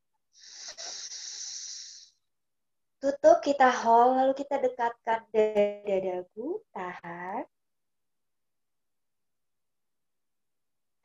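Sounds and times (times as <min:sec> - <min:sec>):
forceful inhale through the left nostril during a breathing exercise: 0:00.4 - 0:02.2
speech: 0:03.0 - 0:07.5.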